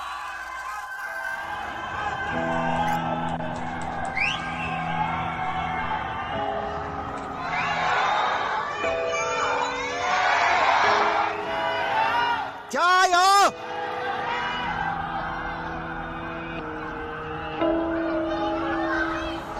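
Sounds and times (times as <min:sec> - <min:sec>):
residents in high apartment buildings shouting stay strong in Chinese: 0:00.0 - 0:19.5.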